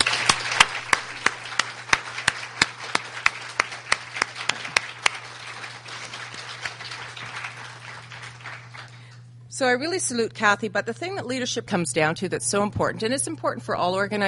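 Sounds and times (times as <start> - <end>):
audience applause of crisp handclaps: 0.0 - 9.1
low hum: 0.0 - 14.2
speech: 9.6 - 14.2.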